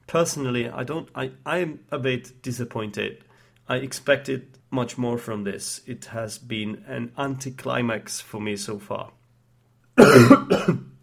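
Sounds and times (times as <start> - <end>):
speech: 0.1 - 9.2, 10.0 - 10.9
person coughing: 10.0 - 11.0.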